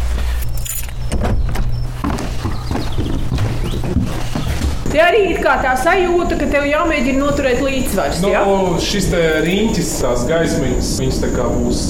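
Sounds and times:
steady low mechanical hum: 0.0 - 11.8
keys jingling while unlocking a door: 0.2 - 1.2, 9.1 - 10.0
speech: 5.0 - 11.8.

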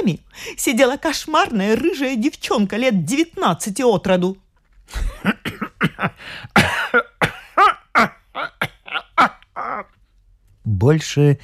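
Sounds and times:
speech: 0.0 - 5.4, 6.0 - 7.1, 10.7 - 11.4
long strained rasping coughing fit: 5.1 - 9.4.

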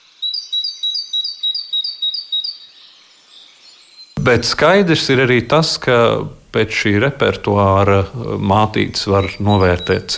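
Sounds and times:
bird singing a bright high-pitched song: 0.0 - 4.5, 7.3 - 10.1
speech: 4.2 - 10.1.

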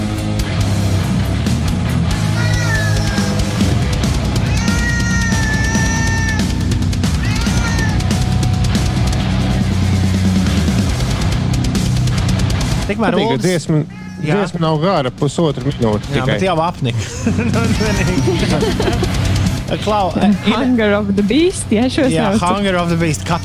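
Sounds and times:
pounding drums: 0.0 - 13.2, 14.7 - 20.5
distorted guitars: 0.0 - 23.4
metal music with drums and distorted guitars: 0.0 - 23.4
cat meows as lead vocal: 2.2 - 8.6, 13.2 - 14.6, 17.6 - 18.8, 20.0 - 20.9, 22.4 - 23.4
laughter: 2.2 - 9.0, 15.6 - 23.4
speech: 12.9 - 23.4.

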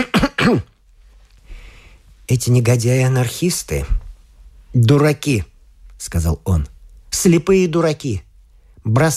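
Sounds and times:
speech: 0.0 - 0.7, 2.3 - 4.0, 4.7 - 9.1
man clearing his throat: 0.0 - 0.8
faint room noise: 0.0 - 9.1.

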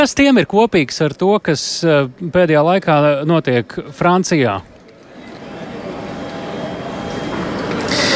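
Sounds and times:
speech: 0.0 - 4.7
steady broadband rumble of a busy rail platform: 3.4 - 8.1
faint tonal hums: 4.9 - 8.1.

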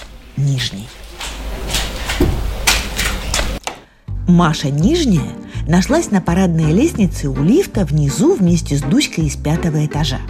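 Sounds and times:
speech: 0.4 - 1.1, 4.3 - 10.2
door eased quietly shut: 0.9 - 3.6.

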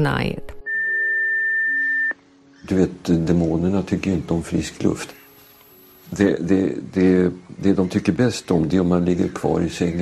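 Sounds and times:
speech: 0.0 - 0.5, 2.6 - 5.2, 6.1 - 10.0
answering machine long electronic beep: 0.6 - 2.2
faint hiss: 2.2 - 10.0.

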